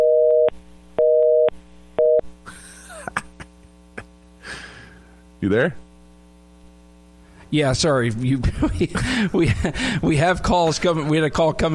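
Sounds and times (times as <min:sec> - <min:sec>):
telephone busy signal after hang-up: 0:00.0 - 0:02.2
speech: 0:05.4 - 0:05.8, 0:07.5 - 0:11.7
laughter: 0:08.3 - 0:11.7.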